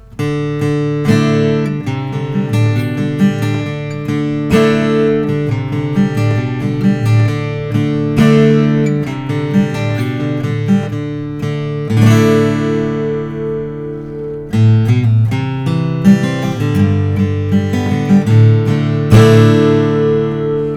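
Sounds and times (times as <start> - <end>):
Martin custom 000 28VS deep body acoustic guitar: 0.0 - 20.7.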